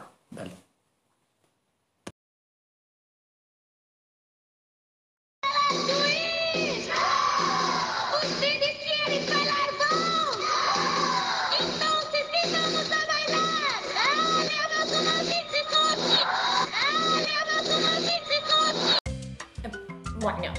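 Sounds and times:
song bridge with voices and instruments playing in reverse: 5.5s - 20.5s.

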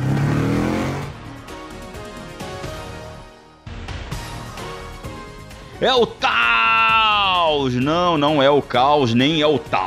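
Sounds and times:
car engine revving and accelerating through gear changes: 0.0s - 1.7s
speech: 5.8s - 6.4s, 7.5s - 9.8s.

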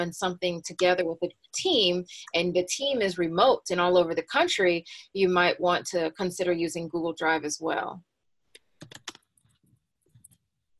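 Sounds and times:
speech: 0.0s - 8.1s
typing on a computer keyboard: 8.8s - 9.2s.

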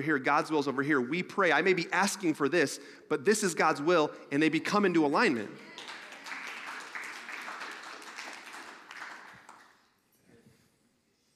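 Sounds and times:
speech: 0.0s - 5.9s
audience clapping: 5.6s - 10.0s.

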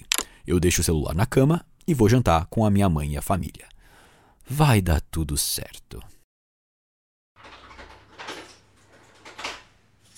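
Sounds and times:
speech: 0.5s - 3.7s, 4.5s - 6.1s
bedroom door creaking open indoors: 7.4s - 10.1s.

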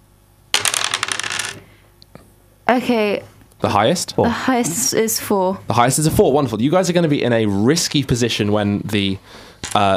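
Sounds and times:
several dice rattling and clattering across a hard surface: 0.6s - 1.7s
speech: 2.7s - 9.9s.

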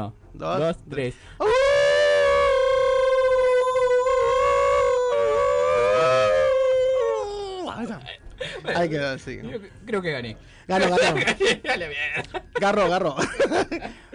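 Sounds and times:
speech: 0.0s - 1.6s, 7.7s - 14.1s
several people imitating a long sustained howl in a contest: 1.4s - 7.7s
laughter: 10.8s - 14.1s.

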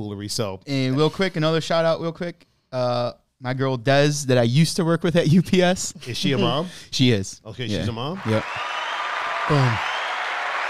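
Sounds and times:
speech: 0.0s - 8.7s, 9.5s - 9.9s
applause: 8.1s - 10.6s
person shouting or cheering: 9.5s - 9.9s.

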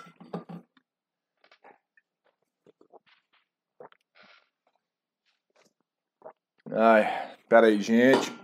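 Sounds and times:
person sipping and gulping water: 1.4s - 6.8s
speech: 6.7s - 8.4s.

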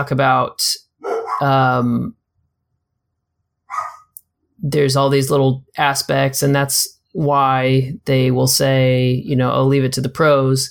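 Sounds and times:
speech: 0.0s - 0.8s, 1.4s - 2.2s, 4.6s - 10.6s
dog barking in the background: 1.0s - 1.5s, 3.7s - 4.1s.

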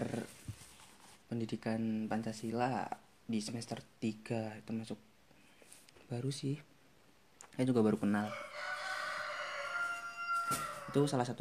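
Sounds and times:
speech: 1.3s - 5.1s, 6.1s - 6.7s, 7.6s - 8.6s, 10.5s - 11.3s
rooster crowing: 8.2s - 11.3s.

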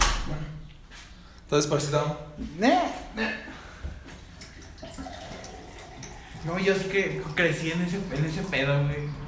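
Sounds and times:
speech: 1.5s - 3.4s, 6.4s - 9.2s
tap water pouring into a glass: 4.4s - 9.2s.

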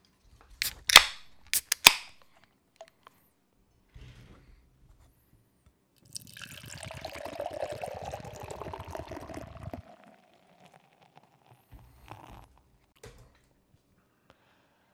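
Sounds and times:
metallic clicks and snaps: 0.6s - 2.3s
beer poured from can into glass: 6.0s - 12.4s.

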